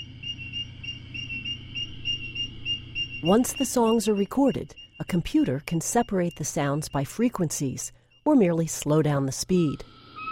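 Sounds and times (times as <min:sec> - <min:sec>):
crickets of several species singing together: 0:00.0 - 0:08.3
speech: 0:03.2 - 0:09.9.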